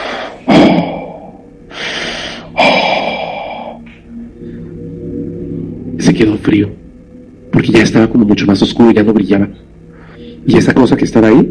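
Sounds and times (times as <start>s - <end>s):
heavy raspy breathing with gasp: 0.0s - 4.9s, 9.8s - 10.5s
speech: 6.2s - 6.8s, 8.0s - 9.7s, 10.4s - 11.5s.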